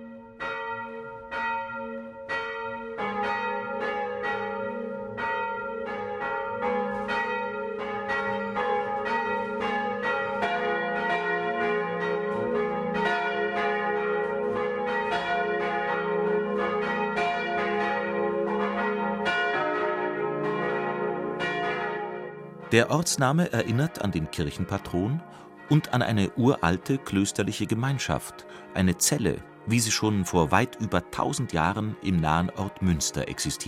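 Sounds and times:
parish church bells ringing at noon in Pauluszell Lower Bavaria Germany: 0:00.0 - 0:33.6
speech: 0:22.7 - 0:33.6.

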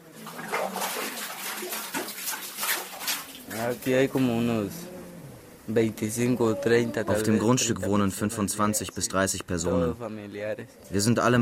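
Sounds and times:
light bucket of water hauled up from a newly dug well: 0:00.0 - 0:03.9
water splashing and sloshing: 0:00.0 - 0:04.4
speech: 0:03.5 - 0:04.9, 0:05.7 - 0:11.4.

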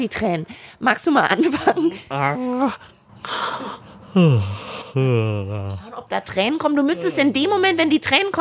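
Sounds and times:
speech: 0:00.0 - 0:08.3
person yawning exaggeratedly: 0:03.6 - 0:05.8.

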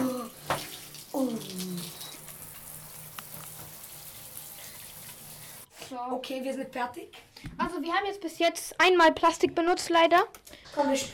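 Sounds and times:
shower water running: 0:00.0 - 0:05.7
person exclaiming: 0:01.2 - 0:02.0
speech: 0:06.0 - 0:11.1.

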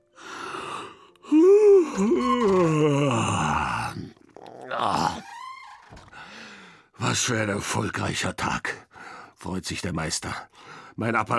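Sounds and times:
breathy stretch-like sigh: 0:00.2 - 0:03.9, 0:06.1 - 0:06.9
loud drawn-out yawn with wavering groan: 0:00.2 - 0:05.2
speech: 0:02.0 - 0:02.4, 0:07.1 - 0:08.8, 0:09.4 - 0:11.3.

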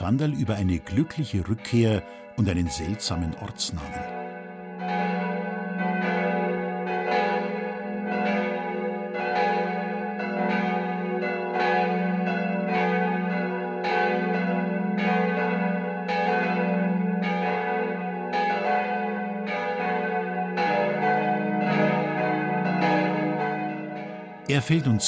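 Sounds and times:
speech: 0:00.0 - 0:04.2, 0:24.6 - 0:25.0
church bells of a Catholic parish church ringing the midday peal: 0:00.0 - 0:25.0.

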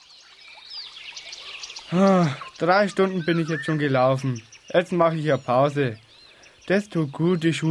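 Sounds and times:
babbling brook with running water: 0:01.3 - 0:05.8
speech: 0:01.9 - 0:06.0, 0:06.7 - 0:07.6.

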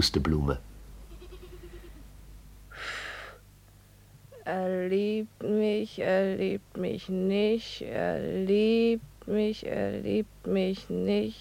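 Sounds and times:
speech: 0:00.0 - 0:00.7, 0:04.5 - 0:11.3
goats bleating in a field: 0:01.1 - 0:02.0.

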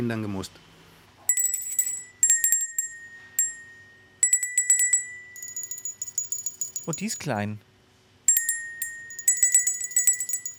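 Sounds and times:
speech: 0:00.0 - 0:00.7, 0:06.9 - 0:07.7
small table bell ringing: 0:01.3 - 0:07.4, 0:08.3 - 0:10.5.

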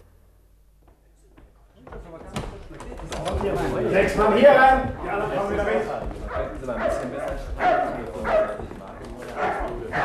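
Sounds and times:
faint murmur: 0:00.7 - 0:10.0
speech: 0:03.4 - 0:08.5
big dog barking deeply: 0:06.3 - 0:08.7, 0:09.3 - 0:10.0.

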